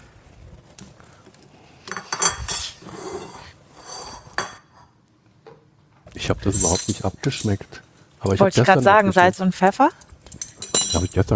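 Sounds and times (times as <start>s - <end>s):
plates and cutlery clattering as a meat dish is plated: 1.8s - 4.8s, 6.5s - 11.2s
speech: 6.3s - 10.0s, 11.0s - 11.3s.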